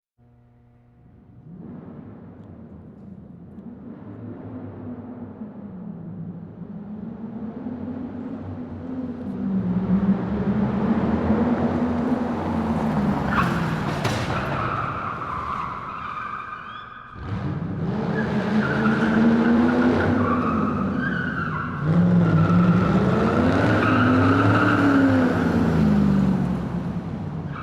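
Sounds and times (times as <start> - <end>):
tires squealing continuously: 1.4 - 27.6.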